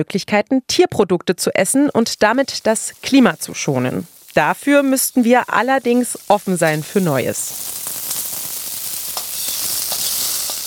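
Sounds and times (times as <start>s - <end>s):
speech: 0.0s - 8.0s
ant eggs frying in butter in a pan: 1.6s - 10.6s.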